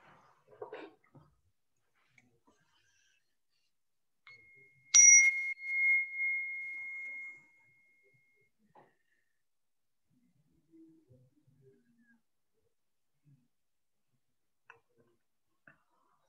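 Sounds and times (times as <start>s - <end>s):
meditation bell struck: 4.3s - 8.0s.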